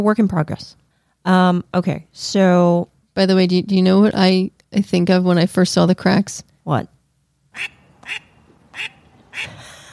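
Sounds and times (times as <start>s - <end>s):
speech: 0.0s - 6.9s, 7.6s - 9.6s
faint hum: 0.0s - 9.9s
duck quacking: 7.6s - 9.6s.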